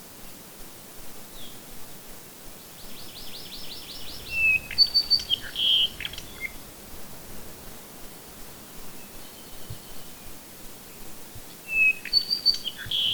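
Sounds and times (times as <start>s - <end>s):
bird song of varied high chirps, whistles and clipped notes: 2.6s - 6.7s, 8.9s - 13.1s.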